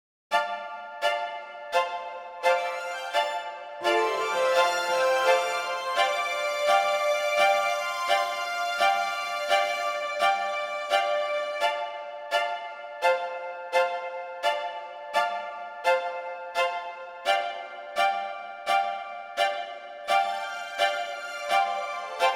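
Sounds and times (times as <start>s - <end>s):
strings with hall reverb from a digital reverb unit: 0.3s - 22.3s.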